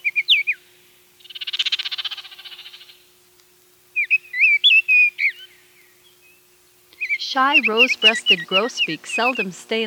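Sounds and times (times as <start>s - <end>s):
oriole singing rich whistled song in treetops: 0.0s - 0.6s, 4.0s - 9.7s
oriole harsh rapid chatter: 1.2s - 3.0s, 4.0s - 6.2s, 6.9s - 9.8s
speech: 7.3s - 9.8s.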